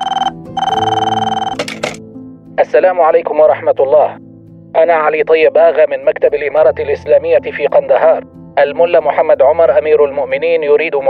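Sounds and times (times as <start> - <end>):
phone ringing with a bright warbling electronic tone late at night: 0.0 - 2.0
speech: 2.7 - 11.0.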